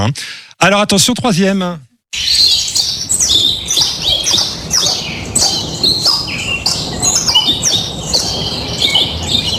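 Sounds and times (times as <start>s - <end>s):
speech: 0.0s - 2.2s
many caged small birds chirping and tweeting: 2.1s - 9.5s.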